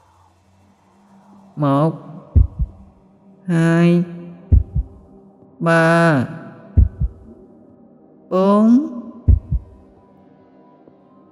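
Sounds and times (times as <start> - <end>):
speech: 1.6 - 2.1, 3.5 - 4.1, 5.6 - 6.4, 8.3 - 8.9
heartbeat pounding: 2.3 - 2.9, 4.5 - 5.1, 6.8 - 7.3, 9.3 - 9.8.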